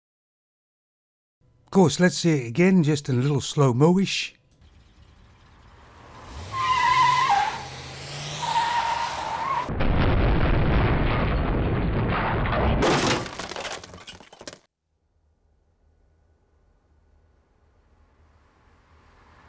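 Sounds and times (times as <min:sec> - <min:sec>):
speech: 0:01.7 - 0:04.4
car tires squealing in a skid: 0:06.0 - 0:09.7
car crashing into a pillar with heavy crunching: 0:10.8 - 0:14.6
shattering, clattering debris: 0:12.5 - 0:14.7.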